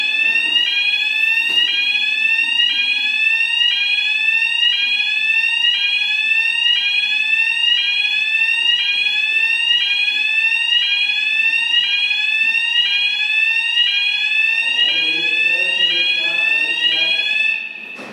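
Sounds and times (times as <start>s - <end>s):
fire alarm: 0.0s - 18.1s.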